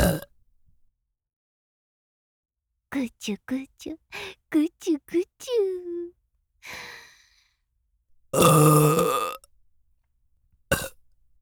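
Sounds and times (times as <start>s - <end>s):
loud drawn-out burp at the ear: 0.0s - 0.3s, 8.4s - 9.4s, 10.7s - 11.0s
speech: 3.0s - 7.0s, 8.3s - 9.2s.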